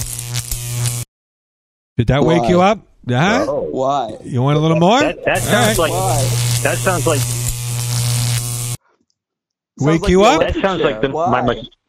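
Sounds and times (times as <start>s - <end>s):
mosquito zapper buzzing and sizzling while frying a mosquito: 0.0s - 1.1s, 5.0s - 8.8s
speech: 2.0s - 7.4s, 9.8s - 11.8s
laughter: 4.6s - 7.2s, 10.0s - 11.7s.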